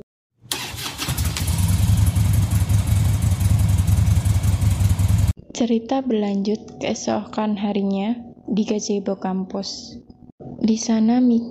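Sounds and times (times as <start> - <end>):
motorcycle engine starting and running with a throaty rumble: 1.1 - 5.4
speech: 5.6 - 11.5.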